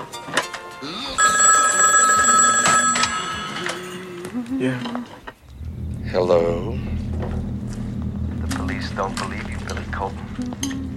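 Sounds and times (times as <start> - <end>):
noise: 0.0 - 10.9
telephone bell ringing: 1.2 - 4.4
speech: 6.2 - 7.0.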